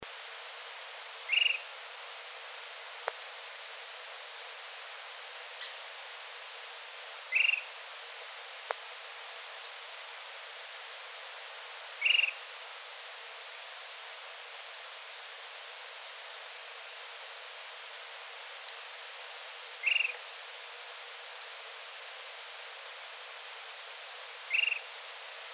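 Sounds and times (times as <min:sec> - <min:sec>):
Short-crested Flycatcher Myiarchus ferox singing: 0:01.3 - 0:01.7, 0:07.3 - 0:07.7, 0:12.0 - 0:12.4, 0:19.8 - 0:20.2, 0:24.5 - 0:24.9.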